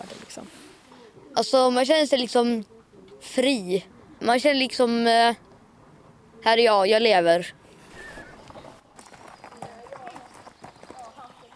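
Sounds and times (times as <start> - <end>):
speech: 1.4 - 5.4, 6.4 - 7.6
hoofbeats of an Icelandic horse being ridden on a forest outing: 8.4 - 11.5.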